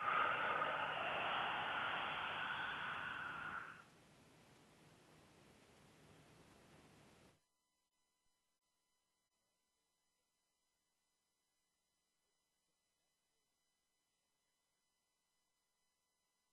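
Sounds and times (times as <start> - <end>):
breath let out gently through the mouth during a guided breathing exercise: 0.0 - 3.9.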